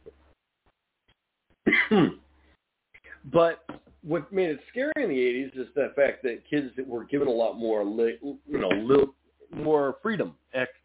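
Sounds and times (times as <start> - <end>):
rough coughs: 1.7 - 2.2
speech: 1.9 - 2.2, 3.3 - 10.8.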